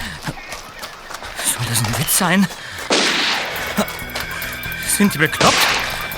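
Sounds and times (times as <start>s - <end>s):
laughter: 1.2s - 6.1s
speech: 1.6s - 2.9s, 3.8s - 4.0s, 5.0s - 5.8s
gunshots from two men shooting among rocks: 2.9s - 6.1s.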